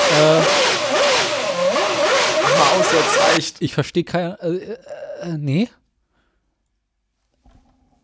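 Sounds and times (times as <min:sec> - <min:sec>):
Renault engine revving: 0:00.0 - 0:03.4
speech: 0:00.2 - 0:00.7, 0:02.6 - 0:05.8.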